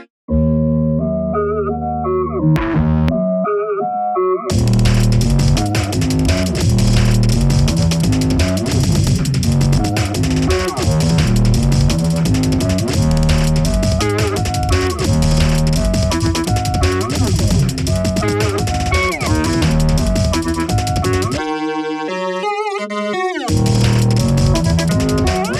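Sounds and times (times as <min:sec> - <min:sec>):
automated drunken synthesizer: 0:00.3 - 0:25.5.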